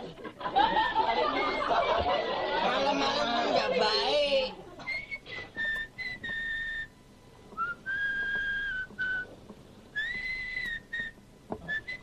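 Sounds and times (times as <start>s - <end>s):
laughter: 0.3s - 3.8s
woman whistling a tune at night: 4.9s - 6.9s, 7.6s - 9.2s, 10.0s - 12.0s.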